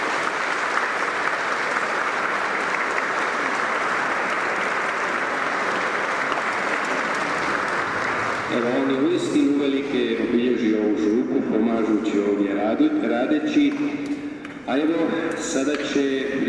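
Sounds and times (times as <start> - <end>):
parish congregation applauding: 0.0 - 9.6
speech: 8.5 - 16.4.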